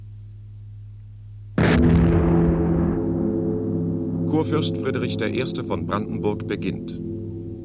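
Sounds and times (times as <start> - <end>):
low hum: 0.0 - 7.6
cannon firing a loud sharp boom: 1.6 - 6.6
speech: 4.4 - 7.1.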